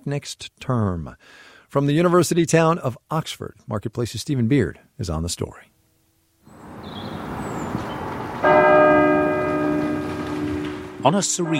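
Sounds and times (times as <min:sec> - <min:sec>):
speech: 0:00.0 - 0:05.7, 0:11.0 - 0:11.5
quiet outdoor ambience: 0:05.8 - 0:11.5
chapel bell ringing: 0:06.6 - 0:11.5.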